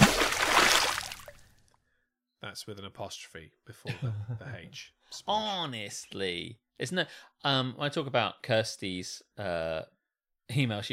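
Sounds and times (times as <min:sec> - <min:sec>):
single loud splash of something thrown into water: 0:00.0 - 0:01.4
speech: 0:02.5 - 0:10.9.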